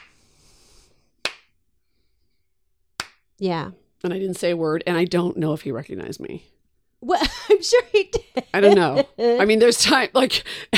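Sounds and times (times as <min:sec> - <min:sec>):
single small sharp hand clap: 0:00.0 - 0:00.3, 0:01.2 - 0:01.5, 0:03.0 - 0:03.2
speech: 0:03.4 - 0:10.7.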